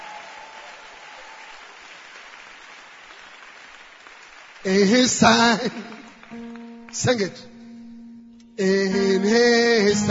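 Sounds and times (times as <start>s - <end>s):
crowd clapping hands: 0.0s - 7.6s
speech: 4.6s - 7.5s, 8.6s - 10.1s.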